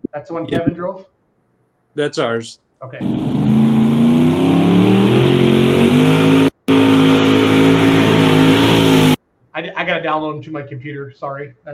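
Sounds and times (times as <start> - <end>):
speech: 0.1 - 1.2, 2.0 - 3.7, 9.8 - 11.7
pulling tractor engine revving: 3.0 - 9.2.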